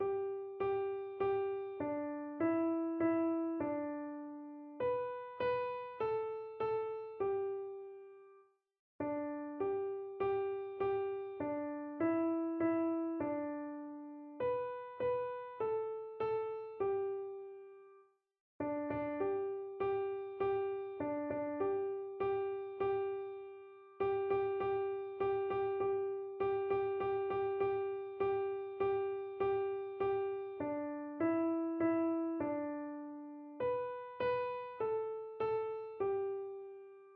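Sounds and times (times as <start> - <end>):
piano melody: 0.0 - 8.2, 9.0 - 17.8, 18.6 - 37.1.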